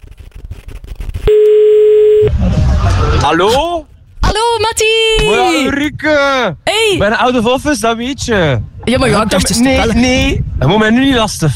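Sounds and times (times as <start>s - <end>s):
telephone ringing tone while placing a call: 1.3s - 2.3s
speech: 3.2s - 3.9s, 4.7s - 11.5s.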